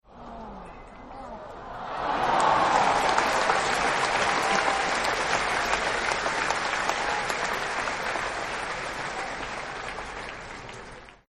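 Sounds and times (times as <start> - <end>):
crowd cheering in disappointment: 1.4 - 11.2.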